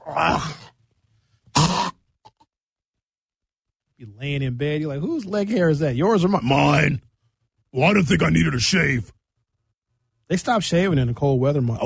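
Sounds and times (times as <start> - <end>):
speech: 0.2 - 0.6, 4.2 - 7.1, 7.7 - 9.2, 10.3 - 11.8
person mimicking hacking up a hairball: 1.5 - 2.4.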